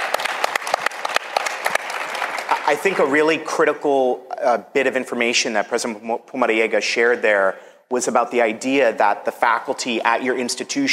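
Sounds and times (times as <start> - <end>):
audience applause at a panel discussion: 0.0 - 3.2
speech: 2.7 - 10.9.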